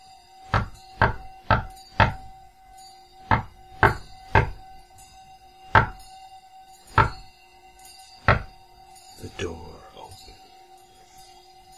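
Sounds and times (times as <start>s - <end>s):
faint steady drone: 0.0s - 11.7s
solid knocks on a door: 0.6s - 2.3s, 3.3s - 4.6s, 5.8s - 6.0s, 7.0s - 7.3s, 8.3s - 8.5s.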